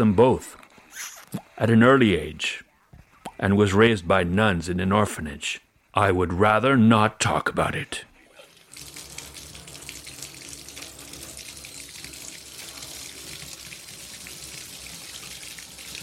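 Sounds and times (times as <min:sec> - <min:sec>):
speech: 0:00.0 - 0:02.6, 0:03.4 - 0:08.1
water running from a tap into a bath and splashing: 0:08.4 - 0:16.0.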